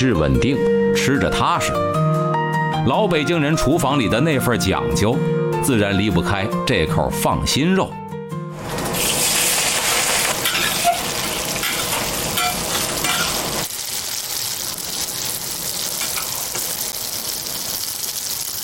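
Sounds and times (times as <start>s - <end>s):
speech: 0.0s - 8.0s
pork fat sizzling in a hot pan while stir-fried: 8.6s - 18.6s
stir-fry scraping in a hot pan: 8.7s - 13.7s.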